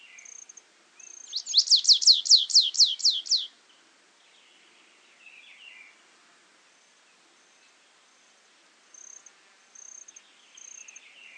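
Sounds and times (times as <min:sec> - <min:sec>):
Stripe-tailed yellow finch Sicalis citrina citrina song: 0:00.0 - 0:06.0, 0:08.9 - 0:11.3.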